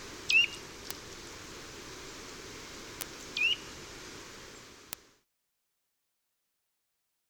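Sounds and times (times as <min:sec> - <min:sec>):
constant low background hiss: 0:00.0 - 0:05.3
bird giving brief rising chirps: 0:00.3 - 0:00.6, 0:03.3 - 0:03.7.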